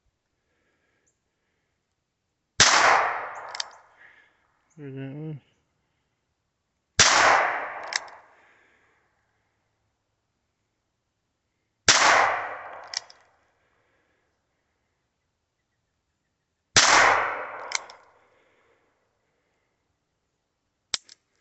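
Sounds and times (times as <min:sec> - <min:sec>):
single-action pistol shots: 0:02.6 - 0:03.7, 0:07.0 - 0:08.1, 0:11.9 - 0:13.0, 0:16.8 - 0:17.9
sharp crack: 0:02.6 - 0:03.8, 0:07.0 - 0:08.2, 0:11.9 - 0:13.2, 0:16.8 - 0:18.1
click: 0:03.5 - 0:03.8, 0:12.8 - 0:13.3, 0:17.7 - 0:18.1, 0:20.9 - 0:21.2
speech: 0:04.8 - 0:05.5.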